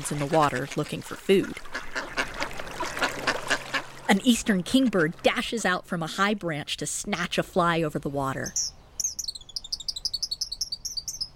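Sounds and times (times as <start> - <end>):
speech: 0.0 - 1.8, 4.1 - 8.6
male song sparrows singing from a woody thicket along a bank: 8.4 - 11.3.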